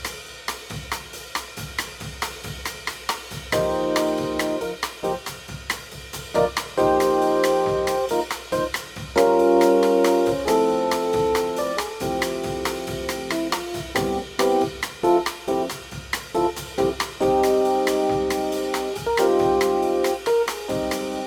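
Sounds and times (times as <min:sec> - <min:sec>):
minor modal backing track without bass: 0:03.6 - 0:05.3, 0:06.4 - 0:21.2.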